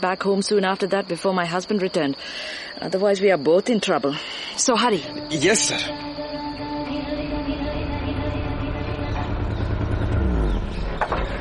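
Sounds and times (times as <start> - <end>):
speech: 0.0 - 6.1
car engine running while driving toward an ashram: 6.8 - 11.4.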